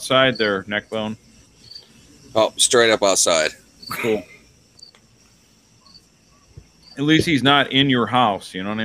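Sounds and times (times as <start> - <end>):
cricket chirping outdoors: 0.0 - 8.8
speech: 0.1 - 1.3, 2.3 - 4.4, 7.0 - 8.8.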